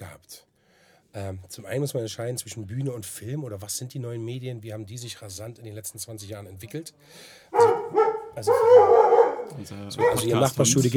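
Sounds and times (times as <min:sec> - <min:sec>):
speech: 0:01.2 - 0:10.9
dog barking in a backyard: 0:07.5 - 0:10.4.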